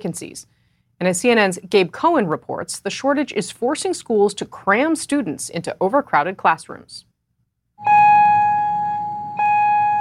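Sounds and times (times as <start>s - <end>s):
speech: 0.0s - 7.1s
loud electronic school bell at a rural high school outside Phoenix ringing: 7.8s - 9.9s.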